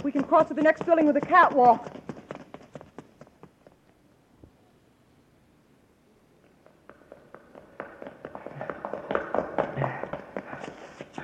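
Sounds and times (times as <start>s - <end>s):
speech: 0.0s - 2.0s
several people's footsteps running up a staircase: 0.0s - 3.8s, 6.6s - 11.2s.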